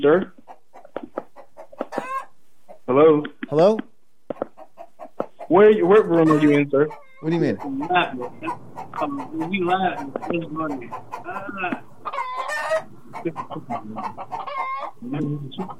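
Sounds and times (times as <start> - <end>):
speech: 0.0 - 0.4, 3.0 - 3.9, 5.6 - 11.8, 13.2 - 15.7
chickens clucking: 0.0 - 15.7
rooster crowing: 12.1 - 12.9.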